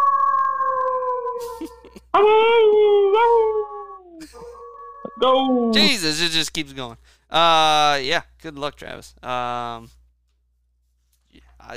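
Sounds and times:
wolf howling: 0.0 - 1.6, 2.2 - 5.9
speech: 2.2 - 2.6, 5.2 - 10.0.

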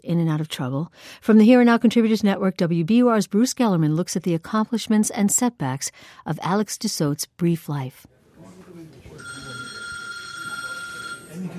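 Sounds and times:
speech: 0.0 - 8.2
faint voices murmuring: 8.2 - 11.5
telephone ringing in an electronic trill at a family home: 9.1 - 11.5.

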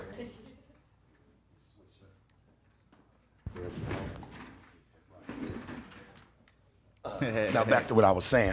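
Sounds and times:
chair scraping and thumping as someone switches seats: 3.5 - 6.3
speech: 7.2 - 8.5.

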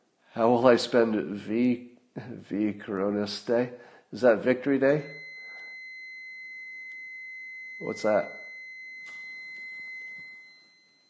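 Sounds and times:
speech: 0.4 - 5.2, 7.8 - 8.4
faint high-pitched electronic alarm tone in a house: 4.8 - 11.0.

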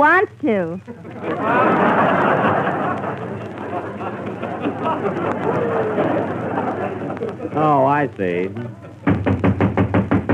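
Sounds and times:
speech: 0.0 - 2.6, 7.6 - 8.8
laughter: 0.9 - 9.1
firm rapid knocking on a door: 9.0 - 10.3.

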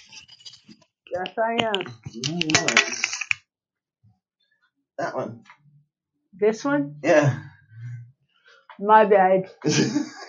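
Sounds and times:
computer mouse clicking: 0.0 - 3.4
speech: 1.1 - 3.1, 5.0 - 5.5, 6.4 - 7.5, 8.8 - 10.2
laughter: 9.7 - 10.2.

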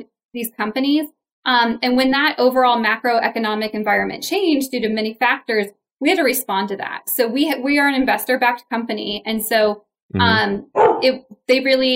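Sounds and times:
speech: 0.0 - 11.9
dog barking: 10.7 - 11.1.

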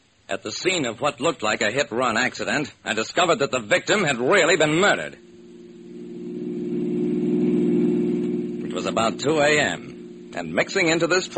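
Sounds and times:
speech: 0.3 - 5.3, 8.8 - 11.3
car engine driving away: 4.6 - 11.3.

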